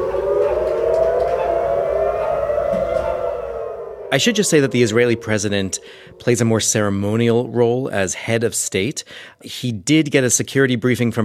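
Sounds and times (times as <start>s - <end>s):
air raid siren wailing: 0.0s - 8.7s
rumbling background: 0.0s - 8.8s
speech: 4.1s - 11.2s.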